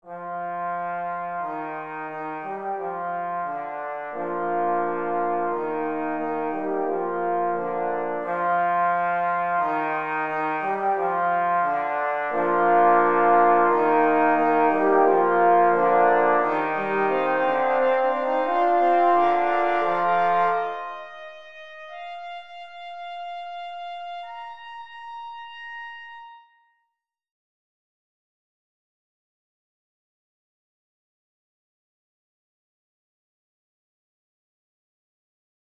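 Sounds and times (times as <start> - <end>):
trumpets: 0.1 - 24.6.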